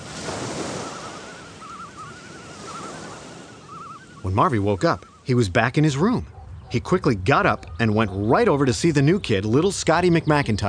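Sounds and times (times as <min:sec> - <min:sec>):
ocean waves washing: 0:00.0 - 0:10.6
faint wavering whistle-like tone: 0:00.6 - 0:04.4
speech: 0:04.3 - 0:10.6.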